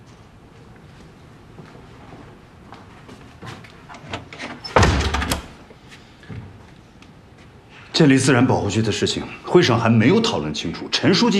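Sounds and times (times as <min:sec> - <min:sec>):
door slamming shut: 0:04.4 - 0:05.6
speech: 0:08.0 - 0:11.3.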